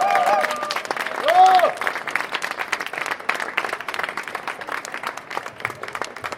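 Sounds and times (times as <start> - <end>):
rising-and-falling whoop or whistle: 0.0 - 1.8
crowd applauding: 0.0 - 6.3.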